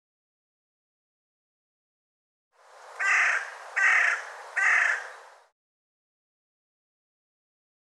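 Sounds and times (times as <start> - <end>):
bird giving harsh hoarse caws: 3.0 - 5.3.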